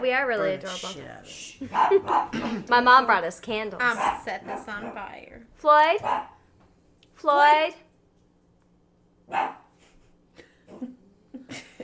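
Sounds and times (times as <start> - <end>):
speech: 0.0 - 6.3, 7.2 - 7.8, 9.3 - 9.6
puppy barking: 1.7 - 2.3, 3.9 - 5.1, 6.0 - 6.4, 9.3 - 9.7.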